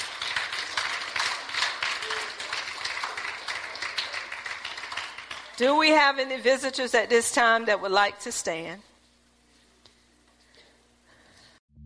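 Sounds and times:
crowd clapping in praise: 0:00.0 - 0:05.9
speech: 0:05.6 - 0:08.9.

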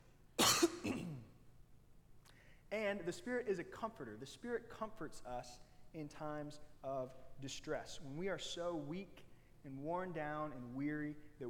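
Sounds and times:
throat clearing: 0:00.4 - 0:01.3
speech: 0:02.7 - 0:11.4.

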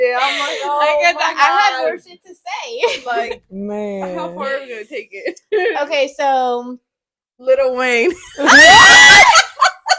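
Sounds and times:
speech: 0:00.1 - 0:09.7
woman screaming into the microphone: 0:08.4 - 0:09.5.

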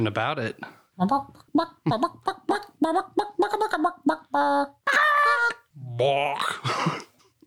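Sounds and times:
speech: 0:00.0 - 0:07.0
chicken squawks and screeches: 0:04.9 - 0:05.6.

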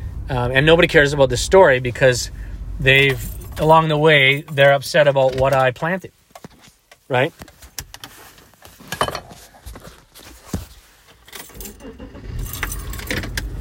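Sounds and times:
speech: 0:00.3 - 0:06.2, 0:07.1 - 0:07.5
keys jingling and clicking: 0:02.9 - 0:04.9, 0:11.3 - 0:13.4.

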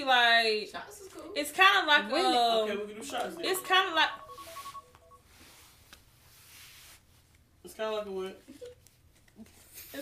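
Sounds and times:
speech: 0:00.0 - 0:04.2, 0:07.7 - 0:08.8
phone keypad tones: 0:03.0 - 0:05.2.

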